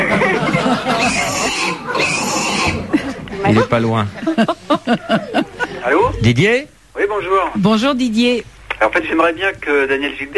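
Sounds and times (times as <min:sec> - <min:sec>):
laughter: 0:00.0 - 0:06.2
pig grunting and snorting: 0:00.9 - 0:02.9
speech: 0:03.5 - 0:04.6, 0:06.2 - 0:10.3.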